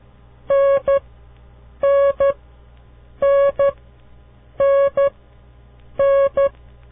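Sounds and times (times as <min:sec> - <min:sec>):
Morse code tones for the letter N: 0:00.5 - 0:01.0, 0:01.8 - 0:02.4, 0:03.2 - 0:03.8, 0:04.6 - 0:05.2, 0:06.0 - 0:06.6.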